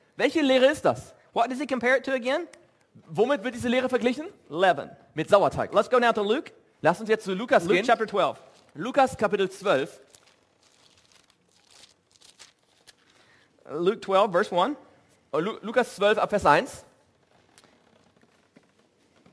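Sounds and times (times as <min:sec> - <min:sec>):
speech: 0:00.2 - 0:10.0, 0:13.7 - 0:16.9
Bible pages being turned in a room: 0:08.4 - 0:13.4, 0:17.0 - 0:19.3.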